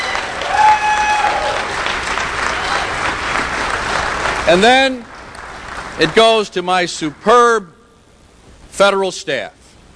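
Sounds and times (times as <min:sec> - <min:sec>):
faint cheering: 0:00.0 - 0:03.2
audience applause: 0:00.0 - 0:07.4
speech: 0:04.5 - 0:05.1, 0:06.0 - 0:07.7, 0:08.8 - 0:09.6.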